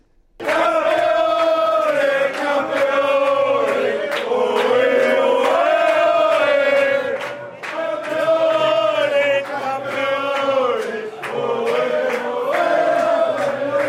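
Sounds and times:
fans cheering and chanting at a Spanish community club in Melbourne, Australia: 0.4 - 13.8.

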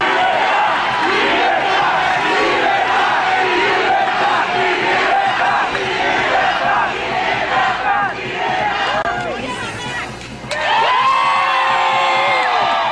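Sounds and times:
large loud crowd of supporters at a march chanting slogans in unison: 0.0 - 12.8
whoops from a crowd of supporters: 10.5 - 12.8.

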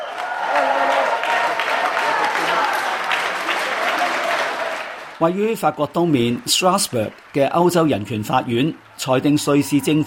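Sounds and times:
crowd of elderly women cheering: 0.0 - 10.0
speech: 5.2 - 10.0.

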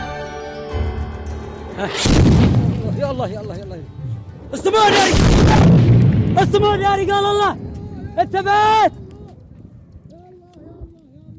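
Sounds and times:
heavy booming airstrike explosions: 0.7 - 3.4, 4.9 - 10.1.

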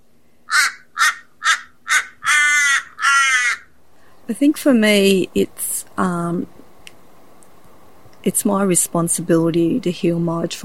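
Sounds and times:
crow cawing: 0.5 - 3.8
speech: 4.3 - 6.6, 8.2 - 10.6.

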